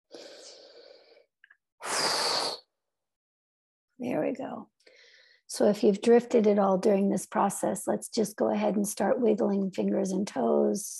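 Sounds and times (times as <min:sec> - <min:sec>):
deep inhale and exhale: 0:00.1 - 0:02.7
speech: 0:04.0 - 0:04.7, 0:05.5 - 0:10.9.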